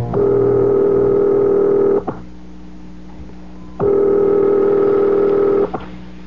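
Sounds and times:
long steady ringing tones on a telephone line: 0.2 - 2.1, 3.6 - 5.8.

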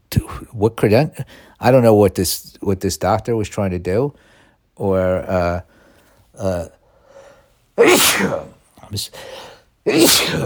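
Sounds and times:
speech: 0.3 - 5.7, 6.4 - 6.8, 7.8 - 10.4
breathy inhales: 4.2 - 4.6, 5.7 - 7.6, 9.2 - 9.7
person sneezing during a conversation: 7.8 - 8.6, 9.2 - 10.4.

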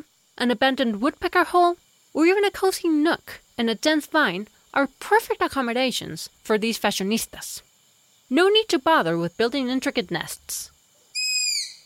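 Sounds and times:
speech: 0.4 - 7.7, 8.3 - 10.7
striped owl whistled scream: 11.1 - 11.8.

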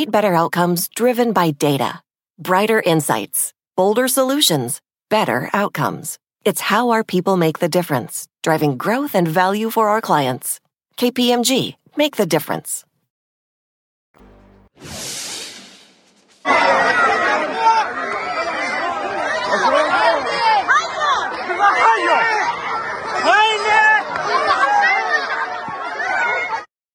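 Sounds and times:
speech: 0.0 - 12.9, 14.8 - 15.3, 16.4 - 17.2
rushing burst of noise: 14.2 - 17.1
panicked crowd shouting and crying out: 16.5 - 26.7.

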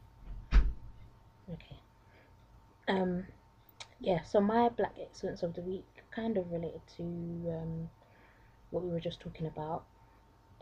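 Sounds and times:
solid thud of a door being shut: 0.3 - 0.9
speech: 1.5 - 1.8, 2.9 - 3.4, 4.0 - 8.0, 8.7 - 9.9.

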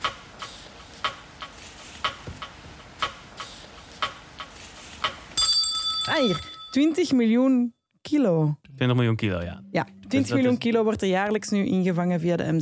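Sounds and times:
clock ticking: 0.0 - 5.5
small bell ringing: 5.4 - 7.4
speech: 6.2 - 12.6.

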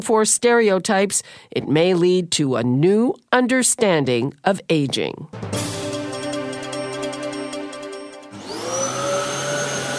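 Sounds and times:
speech: 0.0 - 5.8
vacuum cleaner running: 8.3 - 9.9.

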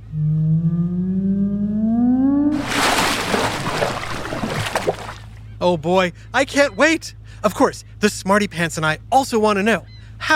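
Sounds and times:
long low whale call: 0.0 - 2.6
loud rushing splash of water: 2.5 - 5.4
speech: 5.6 - 10.3.

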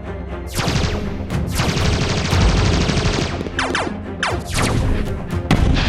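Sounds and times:
heavy gunfire in a warship battle: 0.5 - 5.8.

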